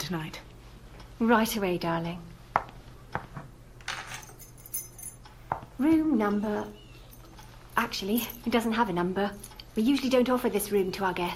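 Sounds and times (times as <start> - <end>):
speech: 0.1 - 0.5, 1.2 - 2.4, 5.8 - 6.8, 7.8 - 11.3
set of keys jangling as they are handed over: 3.8 - 5.3.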